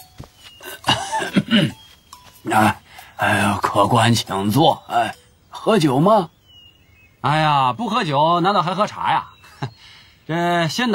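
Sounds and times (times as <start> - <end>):
elderly man coughing raspily in an inner hall: 0.6 - 1.8
speech: 1.5 - 1.8, 2.4 - 6.4, 7.2 - 9.7, 10.3 - 10.9.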